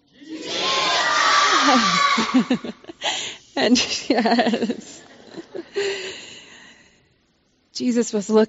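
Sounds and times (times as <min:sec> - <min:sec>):
crowd of many voices yelling together: 0:00.2 - 0:02.6
laughter: 0:00.3 - 0:05.9
scattered individual cries: 0:01.2 - 0:02.7
speech: 0:01.7 - 0:02.9, 0:03.6 - 0:05.0, 0:07.8 - 0:08.4.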